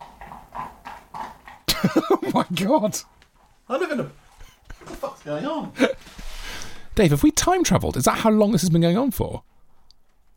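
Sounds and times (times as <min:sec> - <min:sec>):
horse hooves clip-clopping outside: 0:00.0 - 0:05.4, 0:09.4 - 0:10.3
speech: 0:01.8 - 0:04.2, 0:05.2 - 0:05.9, 0:07.0 - 0:09.5.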